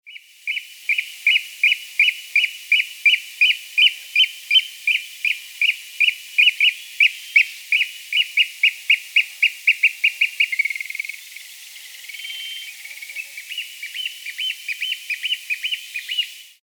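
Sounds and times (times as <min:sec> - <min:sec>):
two oystercatchers calling on take-off: 0:00.1 - 0:16.6.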